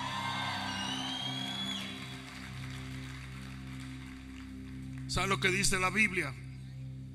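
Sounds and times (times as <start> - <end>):
crowd shouting and whooping in praise: 0.0 - 2.2
speech: 5.1 - 6.4.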